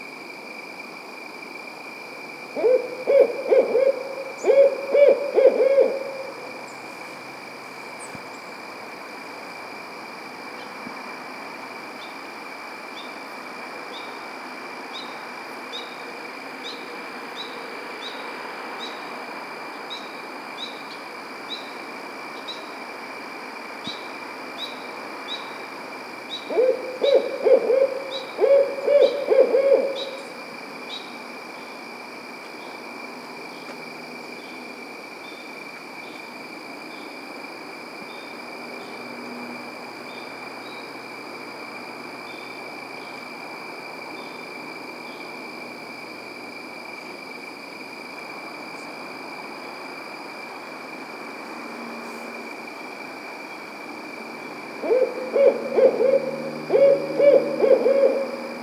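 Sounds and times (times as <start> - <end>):
Barred Owl Strix varia: 2.6 - 6.3, 26.3 - 30.3, 54.8 - 58.5.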